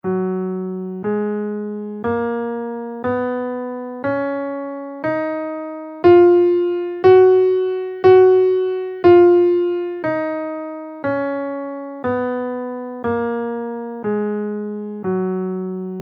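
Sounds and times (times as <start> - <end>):
Ionian scale in F played: 0.0 - 16.0.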